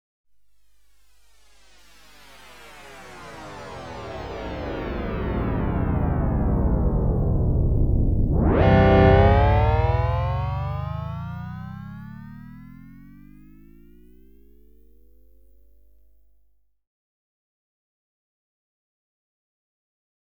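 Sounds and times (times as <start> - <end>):
space fantasy beaming down effect: 3.5 - 16.4.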